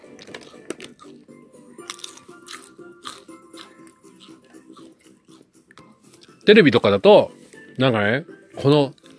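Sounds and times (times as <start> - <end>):
crunchy chewing of something brittle: 0.0 - 1.2, 1.8 - 6.3, 8.9 - 9.1
speech: 6.4 - 9.0.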